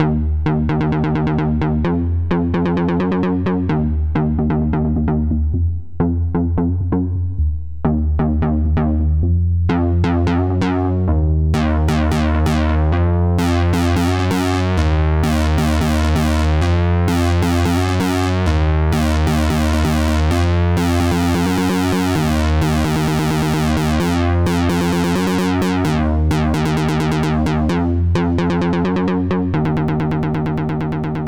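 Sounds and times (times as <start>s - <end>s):
bass loop: 0.0s - 31.2s.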